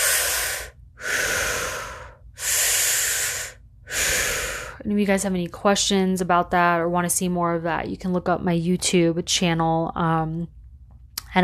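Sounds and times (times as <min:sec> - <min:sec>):
deep conscious connected breathing through the mouth: 0:00.0 - 0:04.8
speech: 0:04.8 - 0:10.6.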